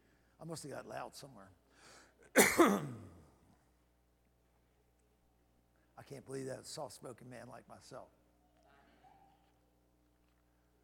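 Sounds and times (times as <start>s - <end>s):
speech: 0.4s - 3.2s, 6.0s - 8.2s
throat clearing from a tickle in the throat: 2.4s - 3.3s.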